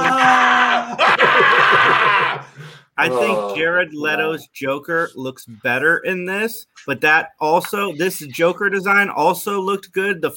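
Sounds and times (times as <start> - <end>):
man yelling: 0.0 - 0.9, 3.0 - 3.8
laughter: 0.0 - 3.5
speech: 3.0 - 10.3.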